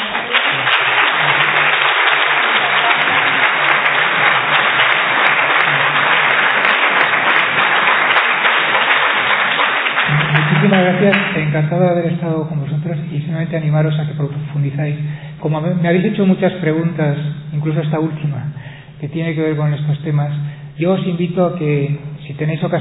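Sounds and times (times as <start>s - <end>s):
audience applause: 0.0s - 11.9s
speech: 11.0s - 22.7s.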